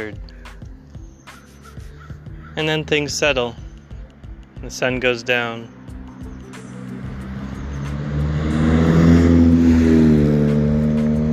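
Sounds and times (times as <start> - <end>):
speech: 0.0 - 0.3, 2.6 - 3.6, 4.6 - 5.8
car engine revving hard speeding uphill: 5.9 - 11.3.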